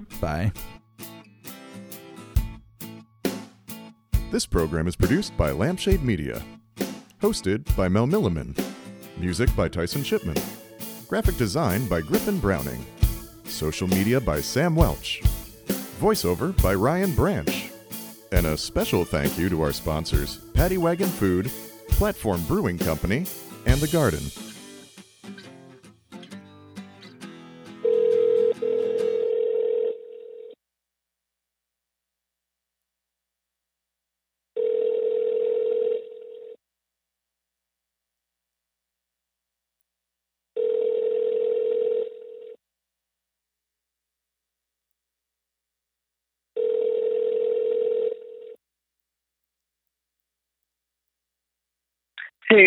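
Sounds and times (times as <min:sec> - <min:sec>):
speech: 0:00.2 - 0:00.8, 0:04.3 - 0:06.6, 0:07.2 - 0:15.4, 0:16.0 - 0:17.6, 0:18.4 - 0:24.4
phone line ringing: 0:27.8 - 0:30.6, 0:34.6 - 0:36.6, 0:40.6 - 0:42.6, 0:46.6 - 0:48.6
jumble of clicks and tones: 0:52.2 - 0:52.6.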